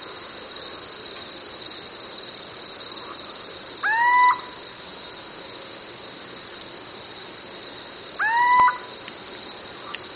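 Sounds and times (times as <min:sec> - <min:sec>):
little owl giving upward-sweeping slightly nasal calls: 0:03.8 - 0:04.6, 0:08.2 - 0:08.9.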